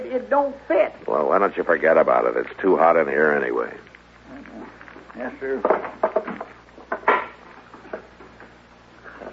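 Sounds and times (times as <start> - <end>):
speech: 0.1 - 3.9, 5.2 - 6.1
stick of wood banging against a stove: 5.6 - 7.4.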